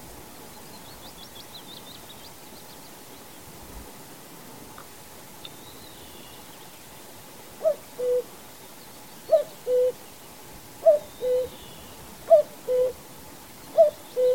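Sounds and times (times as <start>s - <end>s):
common cuckoo two-note song: 7.6s - 8.3s, 9.3s - 10.0s, 10.8s - 13.0s, 13.7s - 14.3s.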